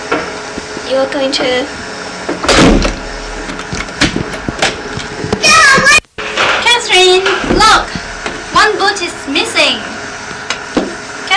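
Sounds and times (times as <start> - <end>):
speech: 0.9 - 1.8, 7.0 - 8.0, 8.6 - 9.9
door closing with a thud: 2.4 - 4.8, 5.6 - 8.4.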